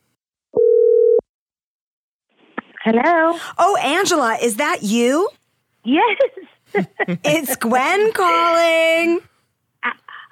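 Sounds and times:
telephone dial tone of an outgoing call: 0:00.6 - 0:01.2
speech: 0:02.8 - 0:10.0.

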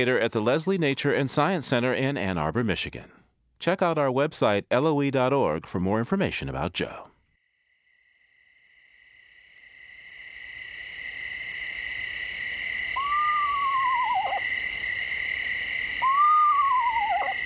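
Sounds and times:
speech: 0:00.0 - 0:07.1
high-pitched chorus of crickets: 0:07.4 - 0:17.4
eastern screech owl whinny calls: 0:12.5 - 0:17.4.

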